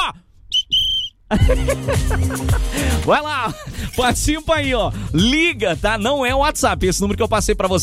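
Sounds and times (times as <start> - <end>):
whistle blasts in a studio: 0.5 - 1.2
laughter: 1.3 - 3.8
speech: 1.3 - 7.8.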